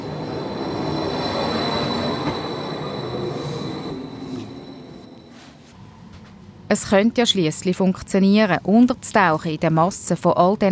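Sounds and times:
thin high-pitched train wheel squeal: 0:00.0 - 0:05.6
passenger train rumbling along rails from Italy into Switzerland: 0:00.0 - 0:06.6
speech: 0:06.7 - 0:10.7.

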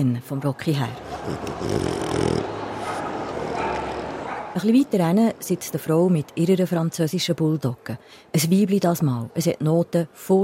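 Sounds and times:
speech: 0:00.0 - 0:02.6, 0:04.6 - 0:10.4
dog snuffling and sniffing at microphone: 0:01.0 - 0:04.5.

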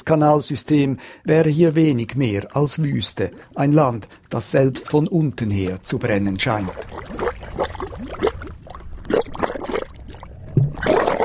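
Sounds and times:
speech: 0:00.1 - 0:07.2
geothermal mud pots bubbling and gurgling: 0:03.0 - 0:11.2.

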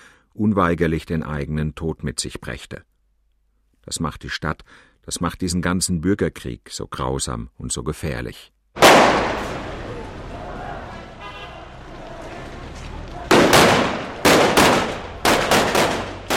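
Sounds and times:
speech: 0:00.4 - 0:02.9, 0:03.9 - 0:09.5
gunshots in Aleppo during the civil war: 0:08.8 - 0:10.1, 0:13.1 - 0:16.3.

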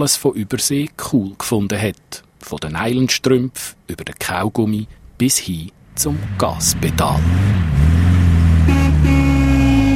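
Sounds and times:
speech: 0:00.0 - 0:07.8
car engine rumbling: 0:04.3 - 0:09.9
car horn honking: 0:08.6 - 0:09.9.

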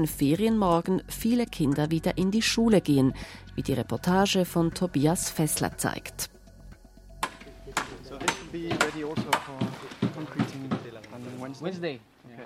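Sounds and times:
speech: 0:00.0 - 0:06.3, 0:08.5 - 0:09.6, 0:11.4 - 0:12.1
hammer blows at a school rebuilding construction site: 0:07.2 - 0:11.0.

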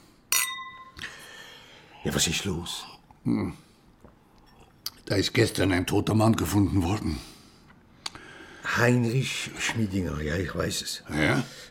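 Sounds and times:
wine glasses clinking in a toast: 0:00.3 - 0:01.2
speech: 0:02.0 - 0:03.7, 0:05.1 - 0:07.3, 0:08.6 - 0:11.6.

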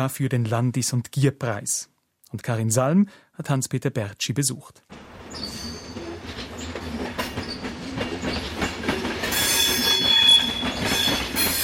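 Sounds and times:
speech: 0:00.0 - 0:05.7
intercity and commuter trains rumbling past: 0:04.9 - 0:11.6
rhythmic train wheel clatter: 0:04.9 - 0:11.6.

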